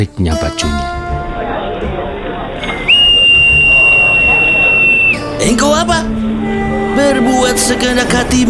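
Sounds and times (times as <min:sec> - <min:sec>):
speech: 0:00.0 - 0:00.9, 0:05.4 - 0:06.2, 0:07.0 - 0:08.4
low murmur of crowd noise: 0:00.6 - 0:08.4
ticket conductor blowing a shrill whistle: 0:02.6 - 0:05.4.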